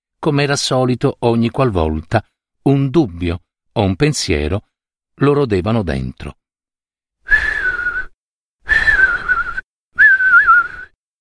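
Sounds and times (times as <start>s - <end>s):
speech: 0.2s - 6.4s
soft muffled breathy whistling through the lips: 7.3s - 11.0s.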